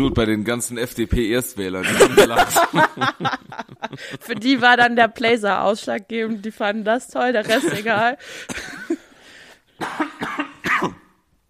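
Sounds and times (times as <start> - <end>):
speech: 0.0 - 9.0
laughter: 1.8 - 5.0, 7.4 - 9.0
person coughing: 7.4 - 9.1, 9.8 - 11.2.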